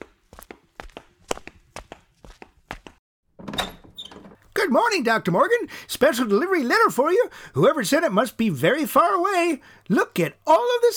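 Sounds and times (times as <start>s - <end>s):
door creaking open: 3.4s - 4.4s
speech: 4.7s - 10.9s.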